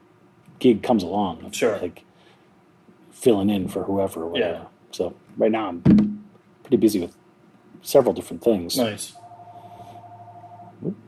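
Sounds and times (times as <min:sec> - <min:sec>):
speech: 0:00.6 - 0:02.1, 0:03.2 - 0:06.1, 0:06.7 - 0:07.2, 0:07.8 - 0:09.2
phone ringing with a steady electronic tone: 0:09.2 - 0:10.8.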